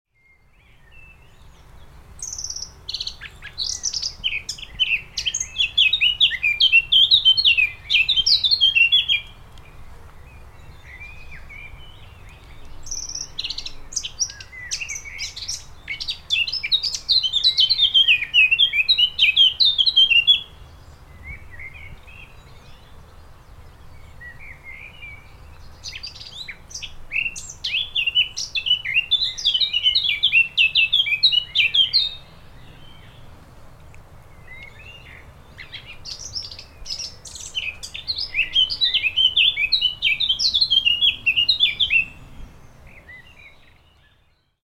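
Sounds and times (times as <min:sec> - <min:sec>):
blackcap singing: 0:02.2 - 0:20.6, 0:24.2 - 0:33.2, 0:34.4 - 0:42.3.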